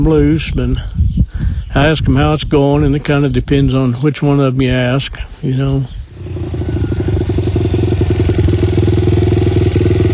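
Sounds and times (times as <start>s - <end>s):
speech: 0.0s - 1.0s, 1.7s - 6.6s
dirt bike engine running: 6.1s - 10.1s.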